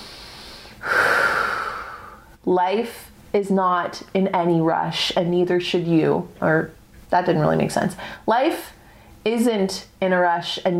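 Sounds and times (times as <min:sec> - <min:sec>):
deep breath: 0:00.0 - 0:02.4, 0:08.8 - 0:09.2
speech: 0:02.4 - 0:10.7.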